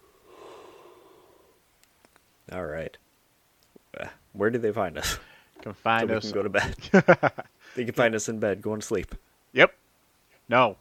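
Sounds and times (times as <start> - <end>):
person yawning while sitting: 0.0 - 1.6
speech: 2.5 - 3.1, 4.0 - 9.8, 10.5 - 10.7.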